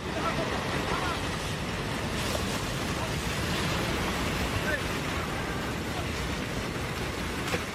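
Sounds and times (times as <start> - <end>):
roar of rushing floodwater: 0.0 - 7.7.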